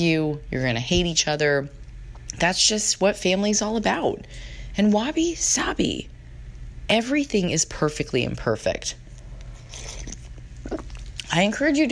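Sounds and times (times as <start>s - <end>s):
speech: 0.0s - 6.1s, 6.9s - 9.0s, 10.7s - 11.9s
steady low hum: 0.0s - 11.9s
person slurping pho soup: 9.6s - 11.0s.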